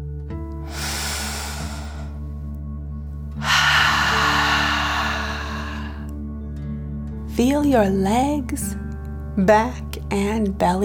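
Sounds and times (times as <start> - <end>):
long loud breathy exhale through the mouth: 0.6 - 2.3, 3.4 - 6.1
slow deep inhale through the nose: 0.6 - 2.3, 3.4 - 6.1
speech: 7.4 - 8.8, 9.4 - 10.8.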